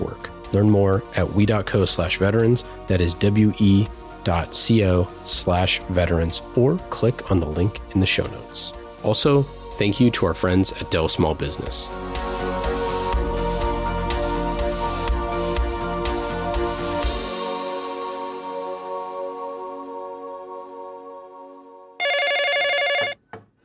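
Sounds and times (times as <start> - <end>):
music: 0.0 - 23.2
speech: 0.5 - 12.5
telephone ringing with a bright electronic trill: 22.0 - 23.3.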